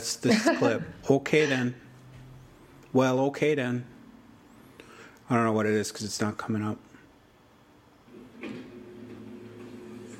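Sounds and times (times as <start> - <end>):
speech: 0.1 - 1.8, 2.9 - 3.9, 5.3 - 6.9
hardware store door opening with a sharp clack: 8.2 - 10.1.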